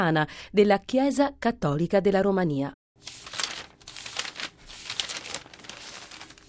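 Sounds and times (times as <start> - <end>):
speech: 0.0 - 3.4
newspaper pages being leafed through: 3.0 - 6.4.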